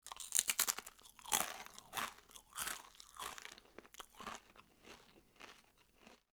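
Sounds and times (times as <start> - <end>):
crunching: 0.1 - 6.2.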